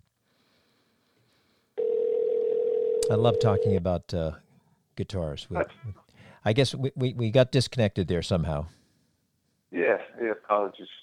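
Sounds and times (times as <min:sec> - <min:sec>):
electronic ringback tone of a phone call: 0:01.8 - 0:03.8
speech: 0:03.1 - 0:04.4, 0:05.0 - 0:08.8, 0:09.9 - 0:11.0.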